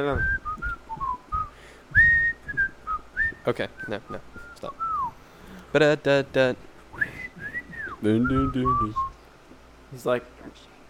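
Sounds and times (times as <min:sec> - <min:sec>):
speech: 0:00.0 - 0:00.4, 0:03.4 - 0:04.9, 0:05.7 - 0:07.2, 0:08.0 - 0:09.1, 0:09.9 - 0:10.7
person whistling a short bouncy tune: 0:00.1 - 0:05.2, 0:07.0 - 0:09.2.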